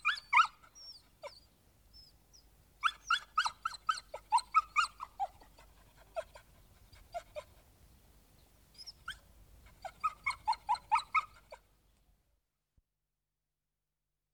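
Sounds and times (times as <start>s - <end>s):
dog yipping barks: 0.0s - 1.4s, 2.8s - 5.5s, 9.8s - 11.6s.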